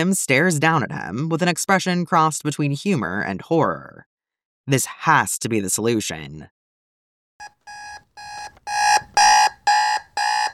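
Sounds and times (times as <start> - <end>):
speech: 0.0 - 4.1, 4.7 - 6.6
alarm clock ringing with shrill electronic beeps: 7.4 - 10.5.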